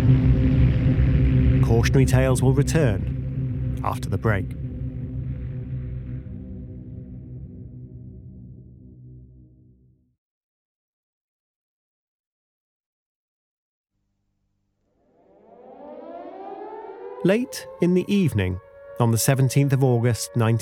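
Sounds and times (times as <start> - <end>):
air raid sirens wailing: 0.0 - 9.5, 15.0 - 20.5
speech: 1.8 - 3.1, 3.8 - 4.6, 17.2 - 20.5.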